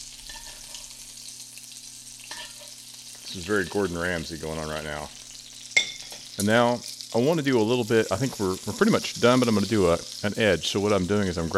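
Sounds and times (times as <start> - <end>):
steak sizzling in a pan of garlic butter while being basted: 0.0 - 11.5
speech: 3.3 - 5.2, 6.4 - 11.5.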